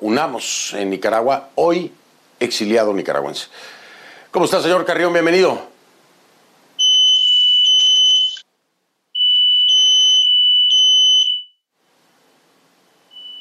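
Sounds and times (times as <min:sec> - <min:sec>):
speech: 0:00.0 - 0:05.7
loud high-pitched electronic alarm blaring: 0:06.8 - 0:08.4, 0:09.2 - 0:11.6, 0:13.1 - 0:13.3.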